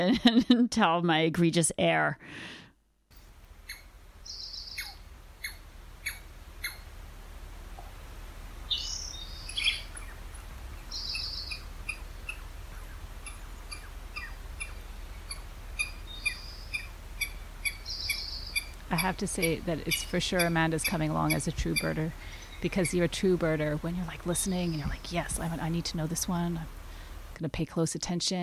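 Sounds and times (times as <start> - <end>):
speech: 0.0 - 2.6, 18.9 - 26.8, 27.4 - 28.4
squirrel giving sharp clicking calls: 3.6 - 6.9, 8.7 - 25.4.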